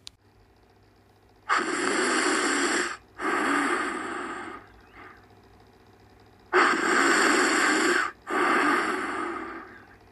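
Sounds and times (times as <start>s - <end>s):
person snoring asleep in bed: 1.5s - 5.1s, 6.6s - 9.8s.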